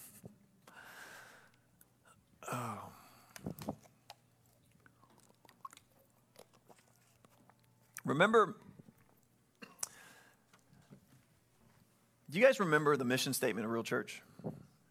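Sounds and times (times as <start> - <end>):
breathy exhale: 0.7 - 1.6
person sipping water: 3.2 - 10.8
wet mouth clicks: 3.8 - 8.1
speech: 8.1 - 8.6, 12.4 - 14.6.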